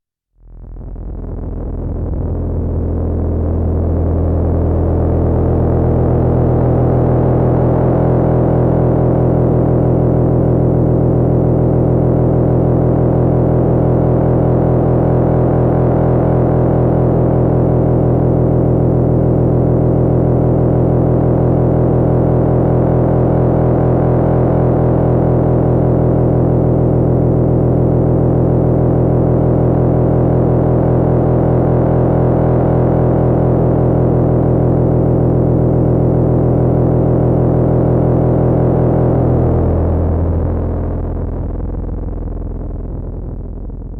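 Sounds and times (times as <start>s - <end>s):
MS-20 deep engine-like drone: 0.4s - 43.9s.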